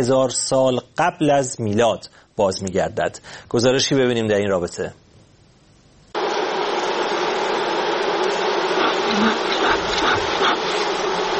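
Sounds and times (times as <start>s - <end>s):
speech: 0.0s - 5.0s
wild honey bees buzzing during wild honey harvesting in Bashkortostan forests: 6.2s - 11.3s.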